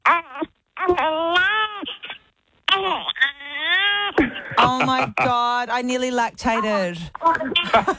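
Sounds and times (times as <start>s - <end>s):
newborn baby girl crying: 0.1s - 5.2s
laughter: 4.6s - 5.4s, 7.4s - 7.9s
speech: 4.9s - 7.9s.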